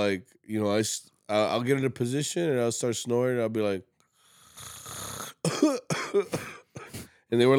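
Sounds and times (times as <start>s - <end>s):
speech: 0.0s - 3.9s, 4.6s - 6.6s, 7.3s - 7.5s
person imitating a constant cough: 5.4s - 7.1s.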